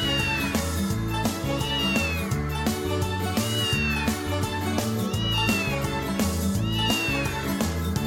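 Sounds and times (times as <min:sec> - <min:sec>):
child imitating cat meowing: 0:00.0 - 0:00.6, 0:01.6 - 0:02.3, 0:03.5 - 0:04.2, 0:05.1 - 0:05.8, 0:06.6 - 0:07.5
loud bouncy musical backing: 0:00.0 - 0:08.0.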